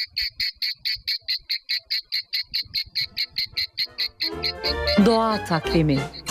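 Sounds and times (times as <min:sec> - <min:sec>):
cicadas buzzing: 0:00.0 - 0:05.0
speech: 0:04.7 - 0:06.2.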